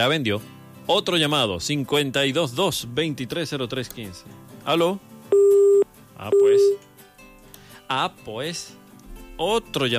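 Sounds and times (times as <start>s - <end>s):
speech: 0.0s - 5.1s, 6.2s - 6.9s, 7.9s - 8.8s, 9.4s - 9.9s
telephone busy tone after a dropped call: 5.3s - 6.8s.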